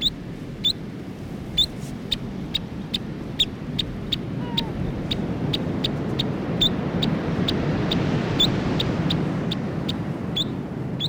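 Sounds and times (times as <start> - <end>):
New Zealand dotterel giving sharp high chip notes: 0.0 - 0.8, 5.5 - 11.0
low background rumble: 0.0 - 11.0.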